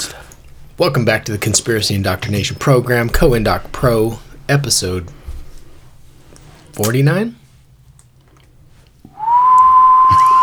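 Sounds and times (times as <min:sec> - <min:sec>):
speech: 0:00.8 - 0:05.2, 0:06.8 - 0:07.4
person whistling a long held note with circular breathing: 0:09.1 - 0:10.4
brief vocal sound: 0:09.2 - 0:10.4.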